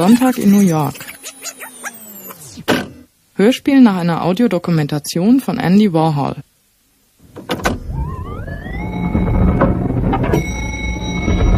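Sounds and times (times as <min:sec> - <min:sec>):
speech: 0:00.0 - 0:01.1, 0:03.4 - 0:06.5
elevator motor whine and hum in a New York building: 0:00.0 - 0:03.1, 0:07.6 - 0:11.5.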